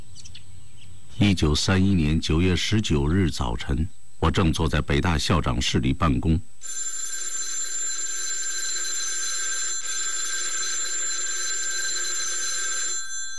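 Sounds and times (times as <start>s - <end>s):
speech: 1.2s - 6.8s
telephone bell ringing in a university president's office: 6.6s - 13.3s.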